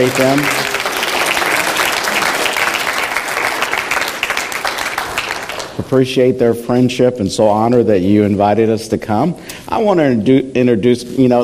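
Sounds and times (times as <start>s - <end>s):
speech: 0.0s - 0.6s, 5.9s - 11.4s
large crowd applauding: 0.0s - 5.8s.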